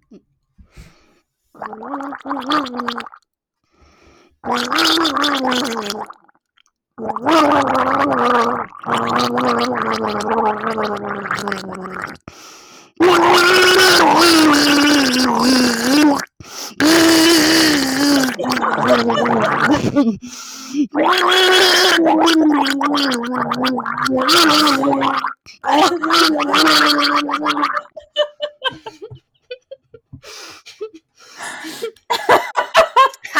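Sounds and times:
person gargling a song's melody: 0:01.6 - 0:03.2, 0:04.5 - 0:06.2, 0:07.0 - 0:12.3, 0:13.0 - 0:28.0
speech: 0:01.6 - 0:03.2, 0:04.4 - 0:06.2, 0:07.0 - 0:12.3, 0:13.0 - 0:17.3, 0:18.4 - 0:29.2
laughter: 0:28.0 - 0:30.0, 0:31.7 - 0:33.3.

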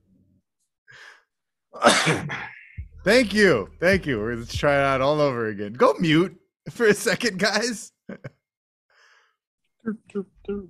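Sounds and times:
person sneezing: 0:01.8 - 0:02.6
speech: 0:01.8 - 0:08.4, 0:09.8 - 0:10.6.

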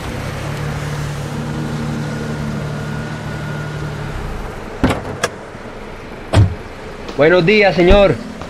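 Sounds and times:
overheated car engine humming: 0:00.0 - 0:08.4
sharp clunks: 0:04.8 - 0:05.4, 0:06.3 - 0:06.7
speech: 0:07.2 - 0:08.3.

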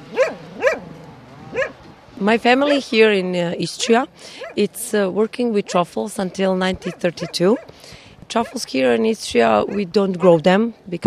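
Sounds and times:
truffle-hunting dogs in cages barking in Istria: 0:00.0 - 0:01.8, 0:02.6 - 0:03.0, 0:03.8 - 0:04.7, 0:06.8 - 0:07.7, 0:08.3 - 0:08.7, 0:09.5 - 0:10.5
speech: 0:02.2 - 0:11.0.

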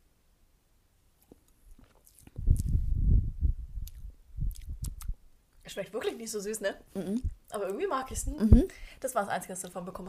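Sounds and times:
wet lip-smacking and chewing while eating with mouth open: 0:01.2 - 0:02.9, 0:03.8 - 0:05.2
speech: 0:05.7 - 0:10.0.

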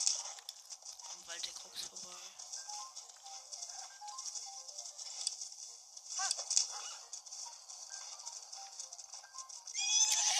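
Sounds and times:
horse galloping across a hillside in a fantasy video game: 0:00.0 - 0:10.3
steady bright hiss of video game ambience: 0:00.0 - 0:10.3.

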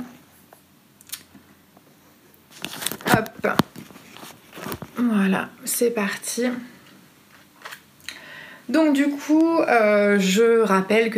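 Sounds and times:
sheet of paper crinkling as it is moved and set down: 0:02.5 - 0:05.1
shuffling while searching for a sheet of paper: 0:02.5 - 0:05.1, 0:07.3 - 0:07.8
speech: 0:05.0 - 0:06.8, 0:08.7 - 0:11.1.

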